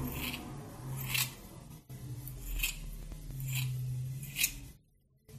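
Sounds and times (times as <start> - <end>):
scissors snipping a person's hair: 0.1 - 1.4, 2.3 - 4.6.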